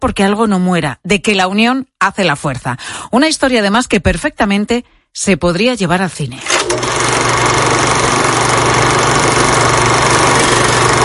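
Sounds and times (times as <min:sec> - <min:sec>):
speech: 0:00.0 - 0:07.3
film projector running with mechanical whirr and rattling flutter: 0:06.5 - 0:11.0.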